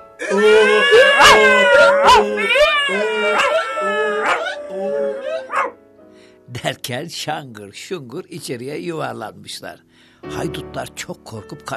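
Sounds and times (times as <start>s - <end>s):
rooster crowing: 0.2s - 4.6s
cat yowling: 0.2s - 5.8s
dog howling: 0.2s - 5.8s
donkey braying: 0.2s - 5.8s
speech: 0.3s - 5.7s, 6.5s - 11.7s.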